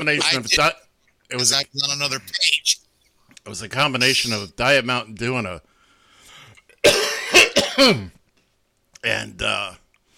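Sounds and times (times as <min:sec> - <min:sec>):
speech: 0:00.0 - 0:02.8, 0:03.4 - 0:05.7, 0:07.8 - 0:08.2, 0:09.0 - 0:09.8
person coughing fit from a lodged Tic Tac: 0:06.8 - 0:08.2.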